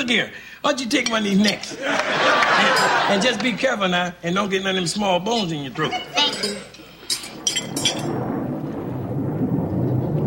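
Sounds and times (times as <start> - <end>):
speech: 0.0 - 6.7
laughter: 1.7 - 3.7
rain pattering: 6.7 - 10.2
deep rumble of thunder during a storm: 7.3 - 10.2.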